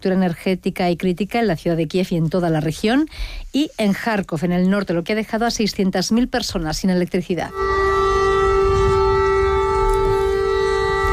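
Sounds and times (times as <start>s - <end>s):
speech: 0.0s - 7.8s
air raid siren over Kyiv: 7.5s - 11.1s.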